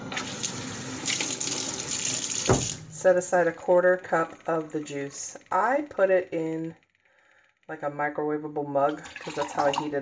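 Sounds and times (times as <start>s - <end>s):
water pouring from a tap into a sink: 0.0s - 2.9s, 8.9s - 10.0s
speech: 2.5s - 6.8s, 7.7s - 10.0s.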